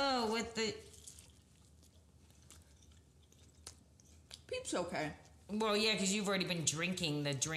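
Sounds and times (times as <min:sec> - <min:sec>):
speech: 0:00.4 - 0:01.0, 0:04.5 - 0:07.5
soft wet chewing of a gooey marshmallow peep: 0:00.5 - 0:05.6.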